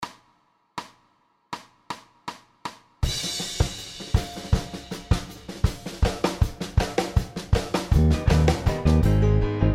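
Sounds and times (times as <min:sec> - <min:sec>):
jazz drums play-along in alternate style: 0:03.0 - 0:09.6.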